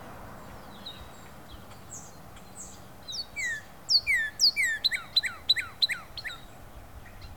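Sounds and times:
Northern cardinal whistling: 3.4s - 6.4s.

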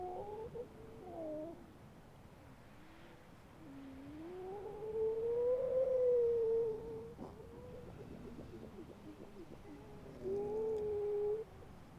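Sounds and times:
grey seal moaning with pulsed sounds: 4.2s - 11.7s.

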